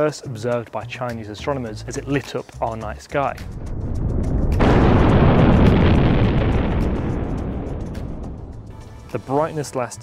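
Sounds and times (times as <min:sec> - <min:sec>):
speech: 0:00.0 - 0:04.2, 0:09.1 - 0:10.0
low rumble: 0:03.3 - 0:08.8
deep explosion sound effect depicting a supernova: 0:03.4 - 0:08.8.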